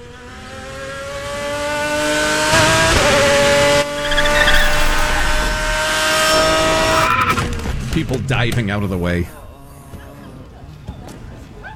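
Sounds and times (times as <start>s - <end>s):
supercharged race car engine roaring: 0.0s - 9.6s
race car tires screeching into a parking lot: 2.0s - 9.1s
speech: 8.3s - 9.4s.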